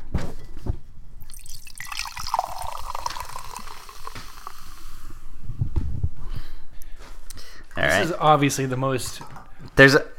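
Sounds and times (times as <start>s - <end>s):
glass clinking: 1.2s - 4.9s
cherry drink pouring into a glass: 1.2s - 5.1s
drips: 1.2s - 5.1s
speech: 8.0s - 10.1s.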